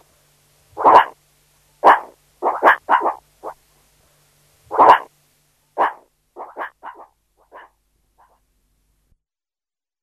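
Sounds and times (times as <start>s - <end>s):
meerkat harsh bark: 0.8s - 1.2s, 1.8s - 3.6s, 4.7s - 5.1s, 5.8s - 8.4s.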